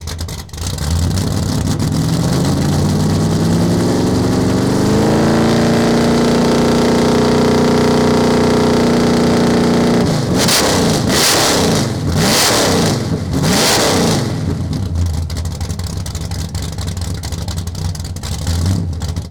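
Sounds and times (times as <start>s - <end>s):
Mustang GT350 engine fast idle rev: 0.0s - 19.3s.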